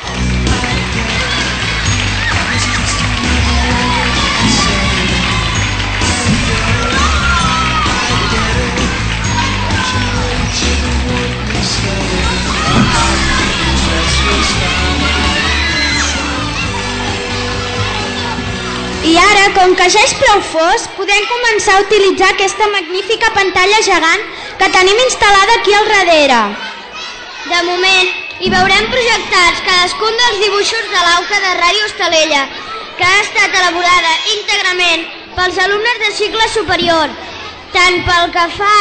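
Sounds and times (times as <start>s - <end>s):
large crowd applauding: 0.0s - 19.0s
large crowd cheering loudly: 0.0s - 23.9s, 24.8s - 38.7s
speech: 19.6s - 26.7s, 27.4s - 38.7s.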